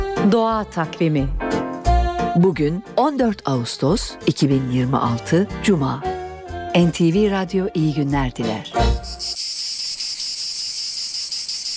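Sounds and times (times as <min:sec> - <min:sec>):
speech: 0:00.2 - 0:01.5, 0:02.4 - 0:06.1, 0:06.8 - 0:09.4
cicada buzzing: 0:09.0 - 0:11.7.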